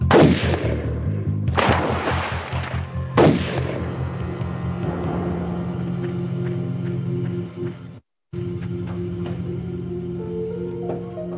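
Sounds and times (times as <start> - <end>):
rifle gunshots beside a stopped car on a road through woods in Tuscarawas County Ohio: 0.1 - 4.0
steady low engine-like hum: 3.7 - 11.3.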